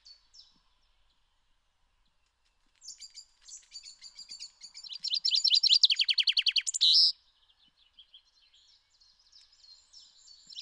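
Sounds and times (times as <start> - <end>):
Common chaffinch song: 4.9 - 7.1.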